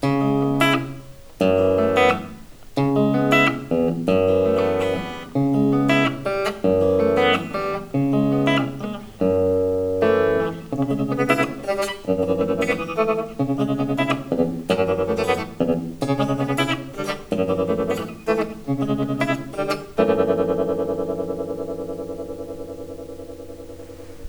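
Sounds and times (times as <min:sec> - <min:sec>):
tremolo tone: 0:00.0 - 0:24.2.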